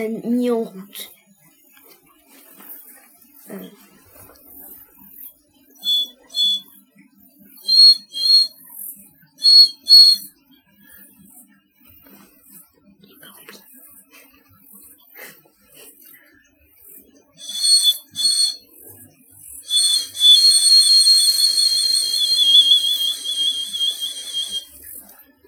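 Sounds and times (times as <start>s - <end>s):
speech: 0.0s - 1.2s, 3.5s - 3.8s
bird call lure being blown to attract birds: 5.8s - 6.6s, 7.7s - 8.5s, 9.4s - 10.3s, 17.4s - 18.6s, 19.7s - 24.7s.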